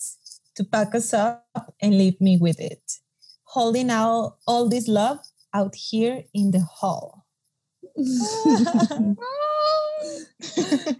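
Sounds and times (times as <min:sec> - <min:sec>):
speech: 0:00.6 - 0:03.0, 0:03.6 - 0:07.2, 0:07.9 - 0:10.9
laughter: 0:08.0 - 0:09.2, 0:10.0 - 0:10.9
girl crying with sobbing gasps and wailing: 0:08.0 - 0:10.9.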